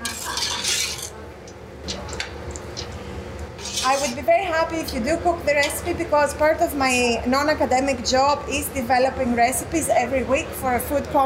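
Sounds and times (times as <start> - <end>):
utensil scraping and clicking against the pan: 0.0 - 1.2, 3.6 - 4.3
speech: 3.9 - 11.2.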